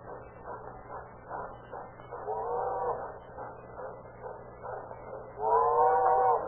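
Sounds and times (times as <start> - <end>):
train rumbling and chugging: 0.0 - 6.4
wavering horn-like wails: 5.4 - 6.4.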